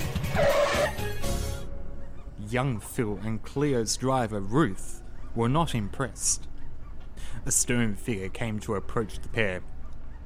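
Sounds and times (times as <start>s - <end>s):
vehicle braking hard with tires screeching: 0.0s - 1.3s
gritty road noise: 0.0s - 10.2s
speech: 2.5s - 6.5s, 7.4s - 9.7s.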